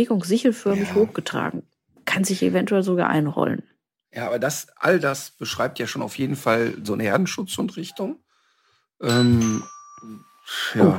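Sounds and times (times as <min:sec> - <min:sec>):
speech: 0:00.0 - 0:08.2, 0:09.0 - 0:10.9
doorbell chime ringing in a home: 0:09.0 - 0:10.9.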